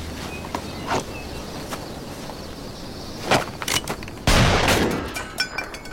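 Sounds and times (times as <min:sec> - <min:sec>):
steady outdoor hum: 0:00.0 - 0:05.9
gunshot: 0:04.3 - 0:05.2.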